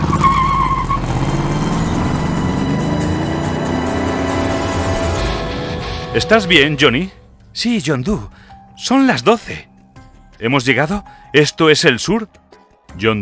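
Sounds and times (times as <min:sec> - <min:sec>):
car tires squealing while braking hard and skidding: 0:00.0 - 0:07.1
car engine rumbling: 0:00.0 - 0:07.6
speech: 0:06.2 - 0:09.7, 0:10.4 - 0:13.2.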